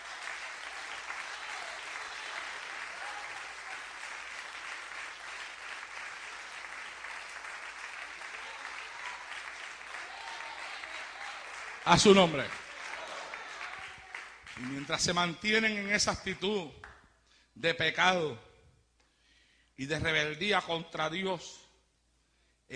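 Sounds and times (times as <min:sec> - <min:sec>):
church congregation applause during a sermon: 0:00.0 - 0:15.5
speech: 0:11.9 - 0:12.6, 0:14.9 - 0:16.9, 0:17.6 - 0:18.5, 0:19.8 - 0:21.6.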